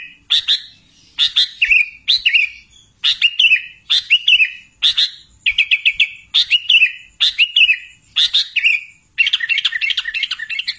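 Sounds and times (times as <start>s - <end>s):
sooty-headed bulbul singing: 0.0s - 10.7s.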